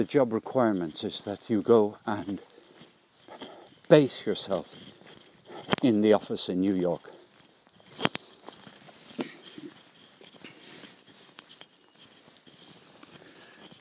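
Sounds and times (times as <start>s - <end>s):
speech: 0.0s - 2.5s, 3.9s - 4.9s, 5.8s - 7.1s
footsteps crunching on a forest path: 0.0s - 13.7s.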